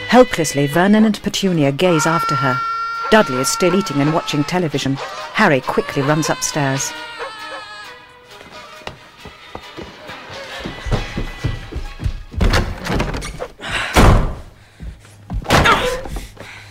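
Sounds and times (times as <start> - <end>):
speech: 0.2 - 7.1
cupboard being kicked angrily: 10.7 - 14.5, 15.3 - 16.2.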